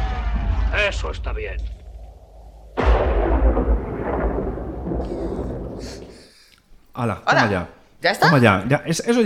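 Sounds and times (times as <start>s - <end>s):
thunder crack and rumble: 0.0s - 6.3s
speech: 0.7s - 1.8s, 4.9s - 6.0s, 7.0s - 9.2s.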